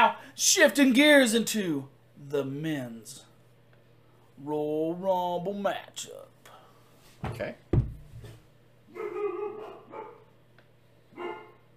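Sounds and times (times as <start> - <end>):
speech: 0.4 - 3.3, 4.4 - 6.3, 7.2 - 7.6
dog barking: 8.9 - 10.3, 11.1 - 11.7.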